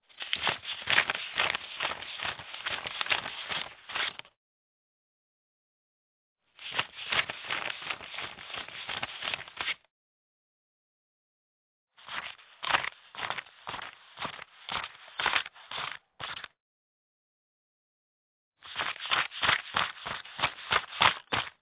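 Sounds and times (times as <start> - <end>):
person counting money by hand: 0.1 - 4.3, 6.6 - 9.8, 12.0 - 16.5, 18.6 - 21.6.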